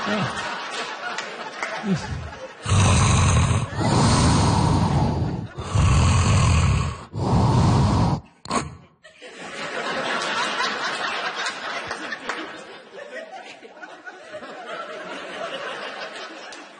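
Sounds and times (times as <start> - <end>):
laughter: 0.0 - 4.0, 9.0 - 16.7
speech: 0.1 - 0.5, 1.8 - 2.8
loud rasping snoring: 1.8 - 8.9.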